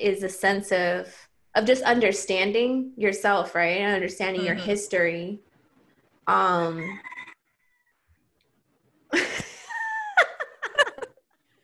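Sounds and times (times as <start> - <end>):
speech: 0.0 - 5.5, 6.3 - 7.1
rooster crowing: 6.6 - 8.1
laughter: 9.1 - 11.2.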